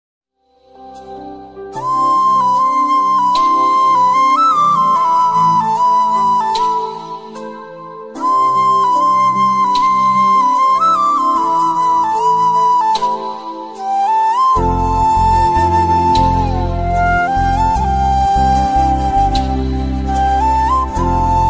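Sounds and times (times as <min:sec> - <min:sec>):
romantic flute music ringtone: 0:01.8 - 0:21.4.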